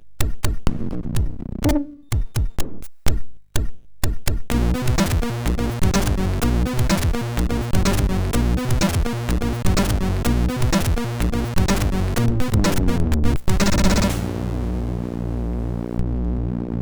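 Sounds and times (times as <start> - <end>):
beat on a SID MOS6581 sound chip: 0.2 - 16.8.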